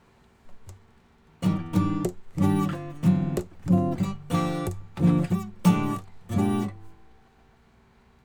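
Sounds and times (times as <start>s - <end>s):
de-noised guitar: 0.4s - 7.3s.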